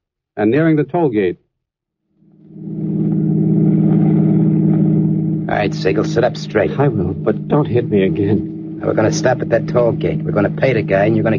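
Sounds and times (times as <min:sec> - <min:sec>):
speech: 0:00.4 - 0:01.4, 0:05.5 - 0:11.3
car engine droning while driving toward a toll bridge: 0:02.2 - 0:11.3.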